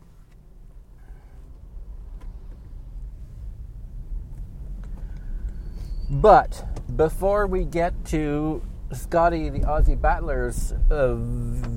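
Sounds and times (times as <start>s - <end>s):
speech: 6.1s - 11.7s
garbage truck engine drone outside: 10.8s - 11.7s.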